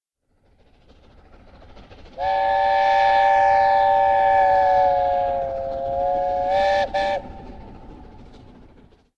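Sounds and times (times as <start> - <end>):
low rumble of approaching A4 Pacific steam locomotive: 0.2 - 9.1
A4 Pacific steam locomotive chime-like whistle on the North Yorks Moors Railway: 2.2 - 7.7.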